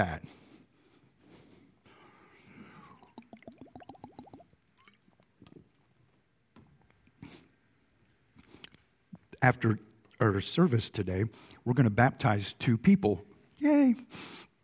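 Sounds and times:
speech: 0:00.0 - 0:00.4, 0:09.4 - 0:13.3
person slurping and gulping water: 0:02.6 - 0:06.0, 0:08.3 - 0:09.3
wet mouth and lip sounds: 0:02.8 - 0:05.8, 0:08.3 - 0:09.2.

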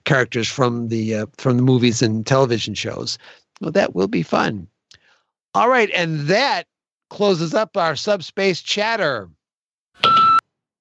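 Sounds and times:
speech: 0:00.1 - 0:04.7, 0:05.5 - 0:09.4
single short electronic beep: 0:10.0 - 0:10.4.

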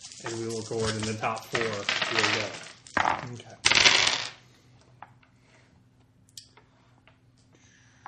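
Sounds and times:
handful of dice rattling and tumbling: 0:00.0 - 0:04.4
low hum: 0:00.0 - 0:08.0
speech: 0:00.2 - 0:02.6, 0:03.2 - 0:03.6.

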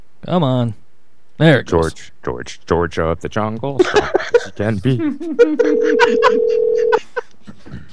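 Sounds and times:
speech: 0:00.2 - 0:00.8, 0:01.4 - 0:07.0
laughter: 0:03.8 - 0:07.9
electronic phone dialing tone: 0:05.6 - 0:07.0.

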